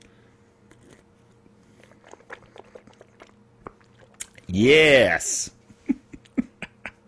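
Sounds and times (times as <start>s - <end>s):
sipping water from a small plastic bottle: 0.7s - 4.5s
wet mouth sounds: 1.7s - 4.5s
speech: 4.5s - 5.6s.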